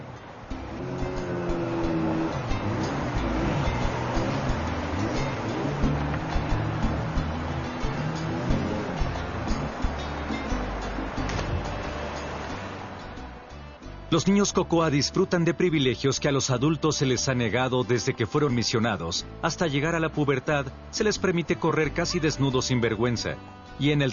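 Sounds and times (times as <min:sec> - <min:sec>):
wind noise: 0:00.0 - 0:13.4
wash of water: 0:00.0 - 0:13.6
canoe outboard motor engine droning: 0:00.0 - 0:14.3
speech: 0:14.1 - 0:24.1.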